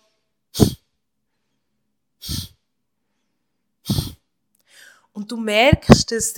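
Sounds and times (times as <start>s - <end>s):
forceful exhale through the nose during a breathing exercise: 0.6s - 0.8s, 2.2s - 2.6s, 3.8s - 4.2s
speech: 5.2s - 6.3s.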